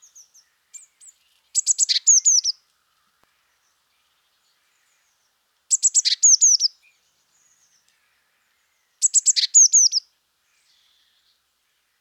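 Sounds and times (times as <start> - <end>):
Eurasian blue tit Cyanistes caeruleus ticks and whistles: 1.6 - 2.6, 5.7 - 6.7, 9.0 - 10.0.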